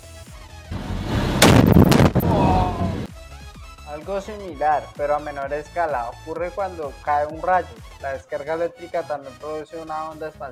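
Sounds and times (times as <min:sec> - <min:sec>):
explosion blast: 0:00.7 - 0:03.1
speech: 0:04.0 - 0:10.5.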